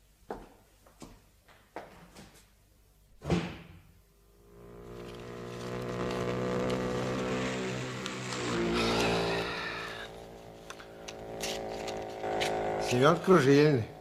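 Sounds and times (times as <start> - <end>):
homemade motorcycle assembled from parts driving off: 4.3 - 13.9
speech: 12.9 - 13.9.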